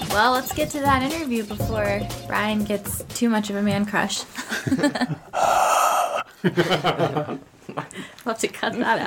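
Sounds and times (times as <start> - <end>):
speech: 0.2 - 5.6, 6.4 - 9.0
laughter: 4.4 - 5.4, 6.3 - 7.9
exaggerated heavy raspy breathing: 5.2 - 6.4.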